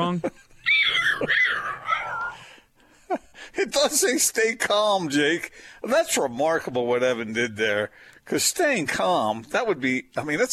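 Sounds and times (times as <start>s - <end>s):
speech: 0.1s - 0.5s, 3.6s - 10.5s
person's voice imitating a dying rabbit with a high-pitched strained squealing wail: 0.7s - 2.4s.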